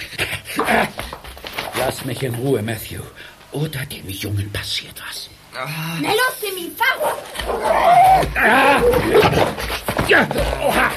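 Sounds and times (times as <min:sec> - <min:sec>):
speech: 0:00.7 - 0:01.0, 0:01.8 - 0:10.9
dog barking and snarling aggressively while attacking: 0:06.8 - 0:09.6
people shouting agitatedly: 0:07.5 - 0:09.4.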